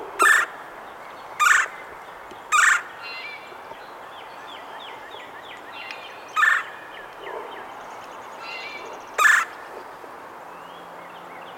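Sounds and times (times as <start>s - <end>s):
Red-bellied Woodpecker Melanerpes carolinus calling: 0.2s - 0.7s, 1.4s - 3.5s, 4.9s - 9.9s.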